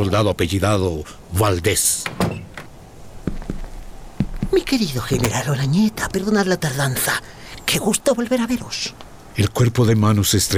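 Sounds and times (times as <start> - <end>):
speech: 0.0 - 2.5, 4.5 - 10.5
latch rattling: 4.8 - 6.2
door opening with clicks and knocks: 5.1 - 5.8
door thuds: 5.1 - 5.9.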